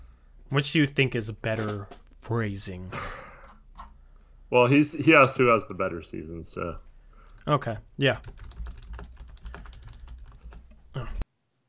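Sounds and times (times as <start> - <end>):
speech: 0.5 - 3.1, 4.5 - 8.6
typing on a computer keyboard: 8.1 - 10.8.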